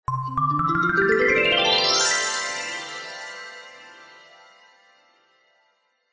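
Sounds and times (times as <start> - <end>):
magic glissando of bright chimes: 0.1 - 3.8.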